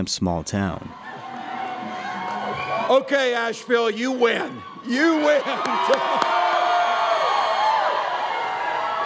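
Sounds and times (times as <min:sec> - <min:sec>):
speech: 0:00.0 - 0:01.2, 0:02.9 - 0:06.4
large rally crowd cheering: 0:00.9 - 0:09.0
high whoops and shouts from the crowd: 0:01.0 - 0:09.0.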